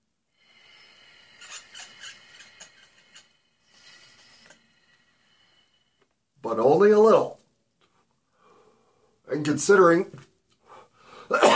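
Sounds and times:
quiet breathing: 0.0 - 6.4, 7.8 - 9.3, 10.5 - 11.4
speech: 6.5 - 7.4, 9.4 - 10.2
harsh breathy cough: 11.3 - 11.5.

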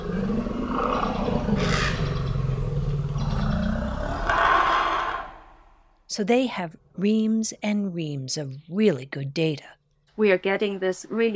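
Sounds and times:
forest elephant rumbling roar in the Central African Republic: 0.0 - 5.9
speech: 6.2 - 11.3.

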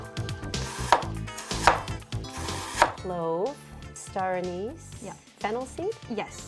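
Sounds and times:
knife chopping ginger and garlic on a cutting board: 0.6 - 3.0
speech: 3.0 - 6.4.

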